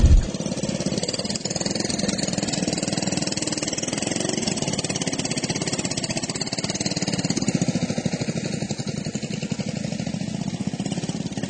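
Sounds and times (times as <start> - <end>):
racing lawnmower engines roaring at a lawnmower race in New Zealand: 0.0 - 11.4.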